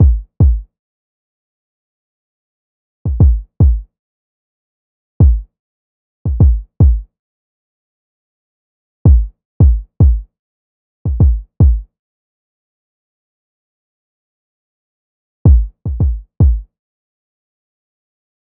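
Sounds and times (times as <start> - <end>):
kick drum loop: 0.0 - 0.6, 3.1 - 3.8, 5.2 - 5.5, 6.3 - 7.0, 9.1 - 10.2, 11.1 - 11.8, 15.5 - 16.7.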